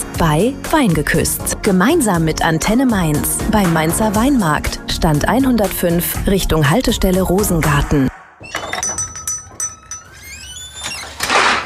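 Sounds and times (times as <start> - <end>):
speech: 0.2 - 8.1
kitchen drawer contents clinking and rattling: 8.5 - 11.6
kitchen drawer sliding on its runners: 10.9 - 11.6.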